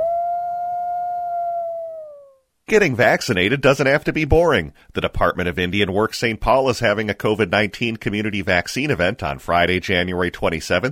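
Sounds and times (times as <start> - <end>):
single wolf howling: 0.0 - 2.4
speech: 2.7 - 10.9.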